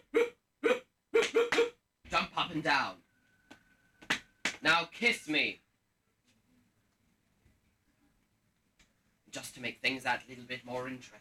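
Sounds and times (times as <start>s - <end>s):
person imitating dog woofs: 0.0s - 1.8s
speech: 2.4s - 3.0s, 4.6s - 5.6s, 9.3s - 11.1s.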